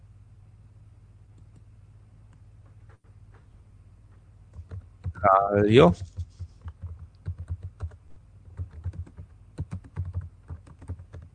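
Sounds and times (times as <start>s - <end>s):
fast heavy typing on a computer keyboard struck with claws: 4.5s - 5.2s, 5.8s - 11.3s
speech: 5.2s - 6.1s.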